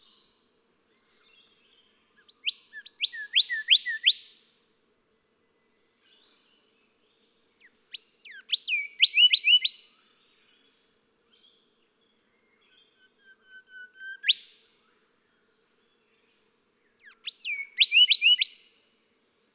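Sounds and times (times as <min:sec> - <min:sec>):
golden whistler singing whip-like notes and whistles: 0:02.2 - 0:04.3, 0:07.7 - 0:09.8, 0:12.7 - 0:15.0, 0:17.0 - 0:18.7.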